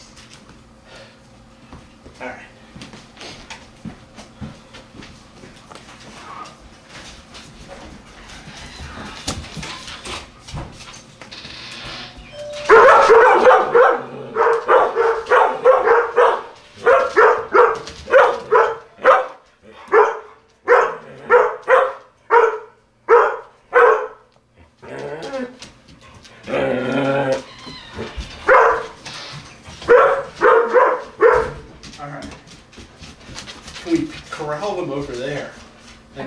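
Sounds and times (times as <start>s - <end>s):
collies barking excitedly: 12.6s - 33.7s
collies growling: 13.5s - 15.9s, 21.0s - 21.3s, 24.6s - 25.6s, 26.3s - 28.2s.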